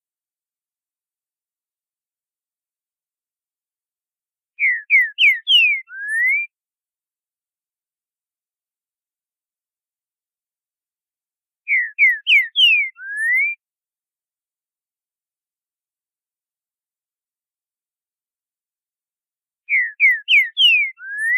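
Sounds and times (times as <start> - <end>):
green-winged saltator song of boiadeiro style: 4.6 - 6.5, 11.7 - 13.6, 19.7 - 21.3.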